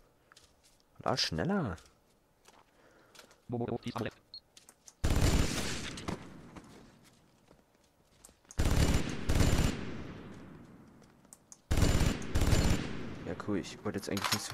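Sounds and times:
speech: 1.0s - 1.9s, 3.5s - 4.2s, 13.5s - 14.5s
video game minigun firing: 5.0s - 6.4s, 8.6s - 10.4s, 11.7s - 13.4s.

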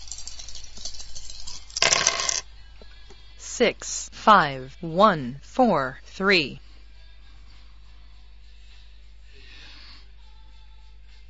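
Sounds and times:
dice rolling in a computer dice game: 1.6s - 2.4s
speech: 3.6s - 6.6s.

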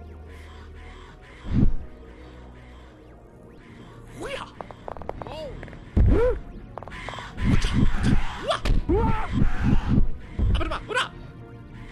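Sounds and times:
harsh bird caws and squawks in a video game fight: 0.3s - 3.0s, 3.6s - 11.9s
sharp impact thumps: 6.0s - 6.2s.

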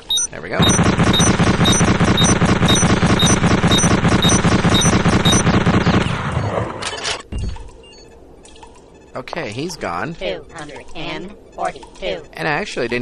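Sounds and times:
bolt-action rifle gunfire in a video game: 0.0s - 6.8s
speech: 0.3s - 1.2s, 9.2s - 13.0s.

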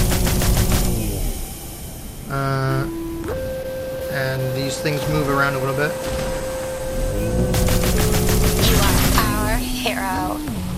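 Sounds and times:
rapid gunfire in a video game: 0.0s - 1.4s, 6.0s - 9.8s
steady electronic hum: 0.0s - 10.7s
wavering tones: 2.0s - 10.6s
speech: 2.3s - 2.6s, 4.7s - 6.2s.

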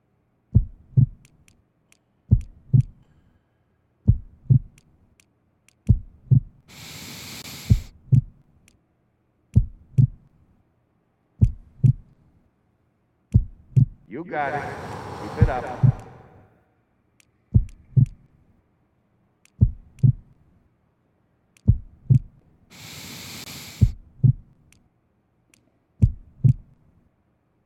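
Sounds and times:
heartbeat thumping in deep lub-dub pairs: 0.5s - 1.3s, 2.3s - 3.0s, 4.0s - 4.8s, 5.8s - 6.7s, 7.7s - 8.4s, 9.6s - 10.3s, 11.4s - 12.2s, 13.3s - 14.1s, 15.2s - 16.3s, 17.5s - 18.2s, 19.6s - 20.4s, 21.6s - 22.4s, 23.8s - 24.5s, 26.0s - 26.7s
hiss of noise: 6.7s - 7.9s, 14.3s - 16.3s, 22.7s - 24.0s
speech: 14.2s - 15.9s.

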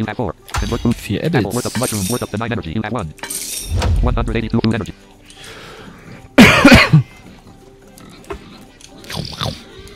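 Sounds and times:
speech: 0.0s - 5.6s
pig grunting: 7.0s - 9.9s.

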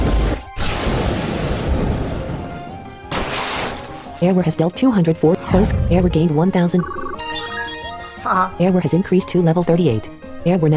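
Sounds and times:
video game lightning attack sound effect: 0.0s - 4.1s
speech: 4.2s - 7.2s, 8.2s - 10.7s.

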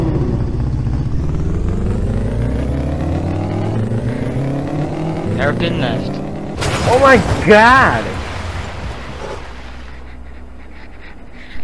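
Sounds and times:
racing video game engine revving and accelerating: 0.0s - 10.2s
speech: 5.5s - 6.2s, 6.8s - 8.2s.

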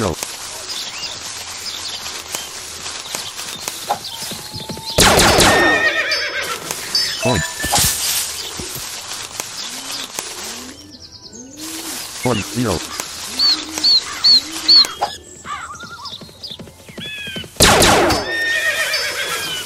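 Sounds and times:
speech: 0.0s - 0.3s, 12.2s - 13.0s
rhythmic clopping of horse hooves: 0.0s - 19.6s
loud shrill horse whinny: 4.8s - 7.2s, 18.2s - 19.6s.

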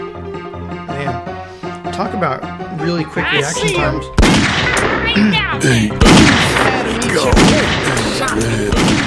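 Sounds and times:
speech: 2.0s - 4.3s, 5.1s - 9.0s
dense busy video game sound: 3.2s - 9.0s
gunfire in a video game desert ambush: 4.2s - 9.0s.

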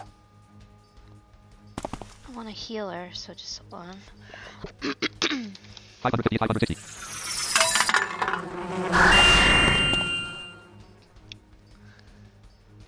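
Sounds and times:
speech: 2.4s - 5.0s, 6.0s - 7.2s
swarm of buzzing bees: 6.5s - 11.0s
rapidly pulsing high drone: 6.6s - 11.0s.

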